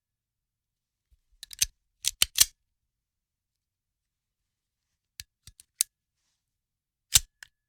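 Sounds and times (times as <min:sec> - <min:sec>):
handgun magazine loading: 0:01.5 - 0:02.5, 0:07.1 - 0:07.5.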